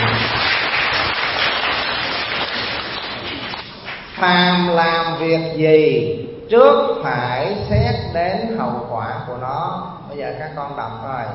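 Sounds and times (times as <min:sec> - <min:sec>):
group of children clapping: 0:00.0 - 0:04.2
speech: 0:04.2 - 0:11.3.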